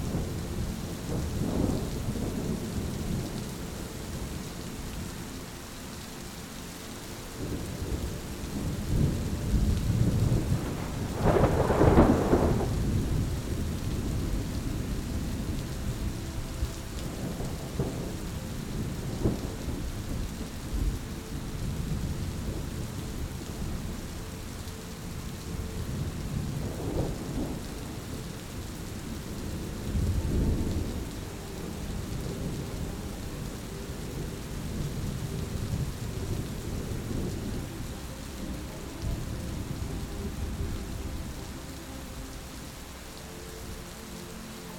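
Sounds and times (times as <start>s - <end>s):
thunder rumbling: 0.0s - 5.2s, 7.3s - 44.6s
rain hissing: 0.0s - 44.7s
thunder crack: 9.9s - 13.1s.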